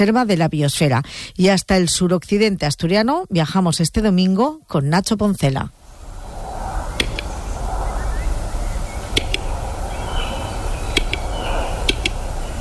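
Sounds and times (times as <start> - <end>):
speech: 0.0 - 5.8
steady outdoor hiss: 0.0 - 12.5
western capercaillie display song of sharp dry clicks: 7.0 - 7.4, 8.6 - 12.5.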